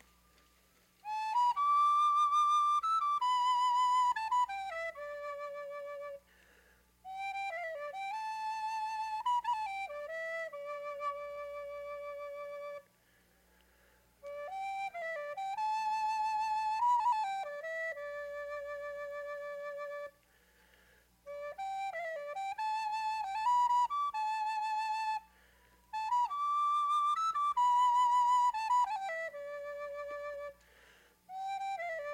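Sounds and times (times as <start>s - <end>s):
small high flute playing a lilting melody: 0.0s - 32.1s.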